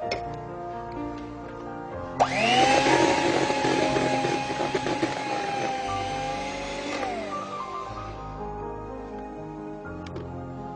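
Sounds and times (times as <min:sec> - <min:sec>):
electric hand mixer beating thick dough: 0:02.2 - 0:08.2.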